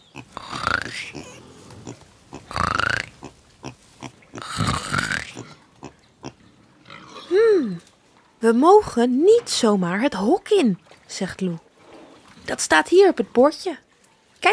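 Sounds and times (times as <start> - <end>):
small piglets grunting and snuffling while sleeping in straw: 0.0 - 7.5
speech: 8.4 - 11.6, 12.5 - 13.8.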